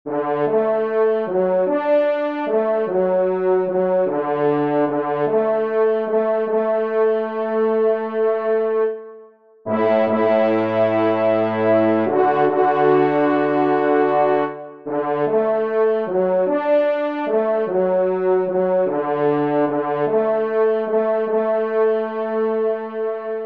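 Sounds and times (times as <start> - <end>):
bass: 0.1 - 9.0, 9.7 - 23.4.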